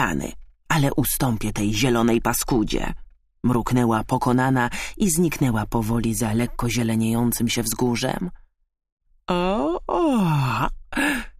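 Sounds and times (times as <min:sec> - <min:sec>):
speech: 0:00.0 - 0:08.4, 0:09.3 - 0:11.3
person acting out a long sleepy yawn: 0:09.3 - 0:11.3.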